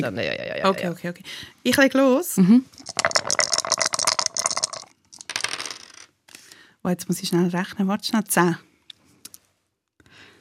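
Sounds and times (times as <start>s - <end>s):
speech: 0.0s - 3.8s, 6.8s - 8.7s
three dice clattering across a hard surface: 2.8s - 6.2s.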